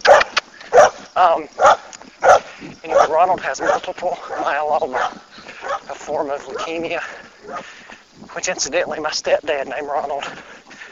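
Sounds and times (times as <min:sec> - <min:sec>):
neighbor's dog barking: 0:00.0 - 0:01.0, 0:01.6 - 0:05.9
speech: 0:01.2 - 0:01.8, 0:02.6 - 0:07.8, 0:08.4 - 0:10.5.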